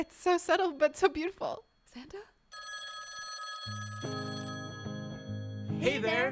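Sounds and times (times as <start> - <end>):
speech: 0.0 - 2.3, 5.8 - 6.3
telephone ringing: 1.8 - 6.3.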